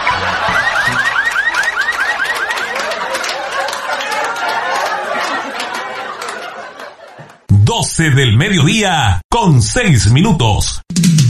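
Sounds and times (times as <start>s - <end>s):
car alarm with rising whoops and warbling: 0.0s - 3.1s
laughter: 0.0s - 7.5s
speech: 8.0s - 11.2s.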